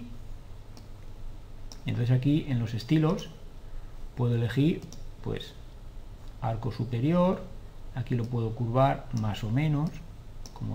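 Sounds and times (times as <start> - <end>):
low steady hum: 0.0 - 10.7
computer mouse clicks: 0.7 - 1.1, 1.7 - 1.9, 4.7 - 5.1, 9.1 - 10.7
speech: 1.8 - 3.4, 4.2 - 5.6, 6.4 - 10.7.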